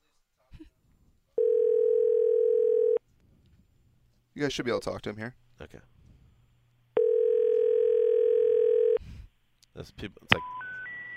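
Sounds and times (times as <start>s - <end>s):
telephone dial tone while placing a call: 1.4s - 3.0s, 7.0s - 9.0s
speech: 4.4s - 6.0s, 9.8s - 10.6s.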